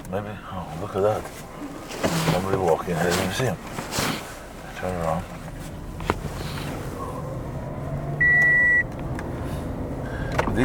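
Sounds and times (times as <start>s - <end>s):
low continuous rumble of vehicle and street noise: 0.0s - 10.6s
speech: 0.1s - 3.8s, 4.8s - 5.4s
car reverse warning beep: 8.2s - 8.9s.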